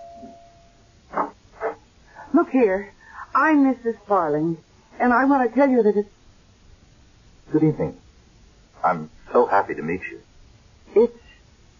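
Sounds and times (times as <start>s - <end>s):
doorbell ringing: 0.0s - 0.9s
speech: 2.4s - 6.2s, 7.5s - 8.0s, 8.8s - 10.2s, 11.0s - 11.2s.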